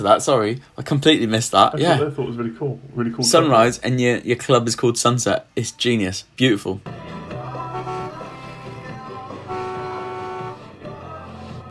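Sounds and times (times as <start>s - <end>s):
speech: 0.0s - 7.1s
car horn blasts: 7.6s - 10.8s.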